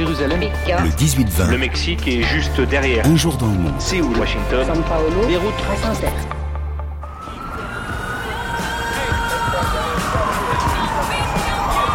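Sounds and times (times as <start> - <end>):
speech: 0.1 - 6.4
emergency siren wailing in a New York City street: 6.9 - 11.9.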